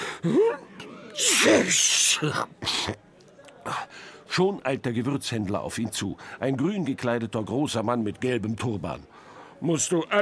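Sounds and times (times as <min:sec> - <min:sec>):
speech: 0:00.2 - 0:03.1, 0:03.7 - 0:10.2
person sneezing from cinnamon powder: 0:01.2 - 0:03.0
voiced wind-up gasp: 0:03.7 - 0:04.3, 0:06.2 - 0:06.4, 0:09.1 - 0:09.6.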